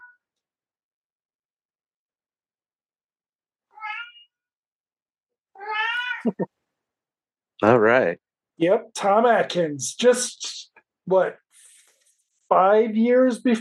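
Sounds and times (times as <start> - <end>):
cat meowing: 3.7 - 4.3, 5.6 - 6.4
speech: 6.2 - 6.6, 7.6 - 11.4, 12.5 - 13.5.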